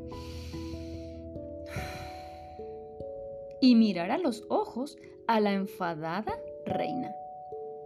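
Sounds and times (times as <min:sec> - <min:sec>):
deep airy breath drawn in and let out: 0:00.0 - 0:03.0
speech: 0:03.6 - 0:07.2.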